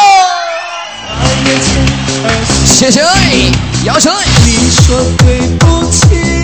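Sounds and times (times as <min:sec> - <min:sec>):
audience screaming and cheering: 0:00.0 - 0:02.4
speech: 0:02.8 - 0:06.3.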